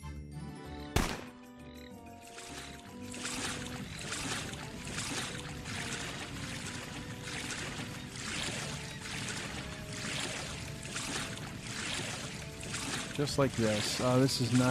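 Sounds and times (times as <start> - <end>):
sharp thunk: 1.0 - 1.3
boat paddle splashing through water in a video game: 2.2 - 14.6
speech: 13.2 - 14.6.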